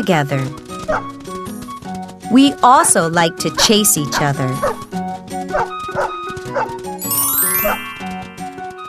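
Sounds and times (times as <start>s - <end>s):
speech: 0.0s - 1.1s, 2.3s - 4.8s
music: 0.0s - 8.8s
dog barking: 4.6s - 4.8s, 5.5s - 6.7s
bright rising chime: 7.0s - 8.8s.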